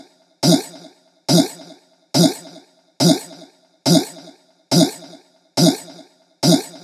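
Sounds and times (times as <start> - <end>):
trap and dubstep chant loop: 0.4 - 6.8.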